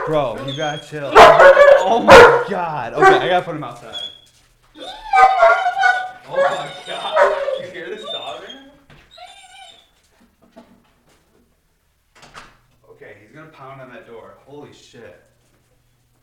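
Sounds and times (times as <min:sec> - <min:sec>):
speech: 0:00.0 - 0:04.0, 0:13.6 - 0:15.3
German Shepherd squealing and whining: 0:00.3 - 0:02.3, 0:03.0 - 0:10.1
German Shepherd barking: 0:01.0 - 0:03.4, 0:05.1 - 0:07.8.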